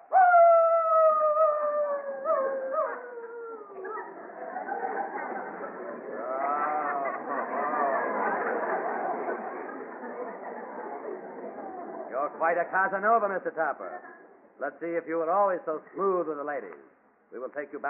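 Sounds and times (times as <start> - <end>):
man on all fours howling like a wolf: 0.0 - 3.8
laughter: 3.5 - 12.7
speech: 12.5 - 17.8.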